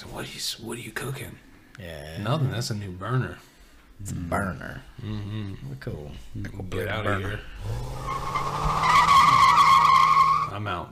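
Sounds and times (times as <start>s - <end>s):
speech: 0.0s - 8.9s, 10.5s - 10.8s
car tires squealing as the car peels out: 7.7s - 10.6s.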